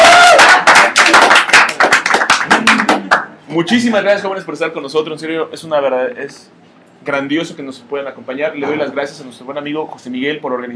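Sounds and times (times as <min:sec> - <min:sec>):
applause from a small group at a comic-fan gathering: 0:00.0 - 0:03.4
speech: 0:03.6 - 0:10.7.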